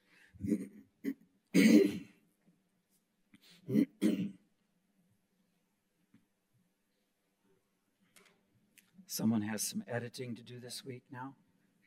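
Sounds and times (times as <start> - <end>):
speech: 0.4 - 0.7, 9.2 - 11.4
person clearing throat: 0.4 - 2.2, 3.7 - 4.4.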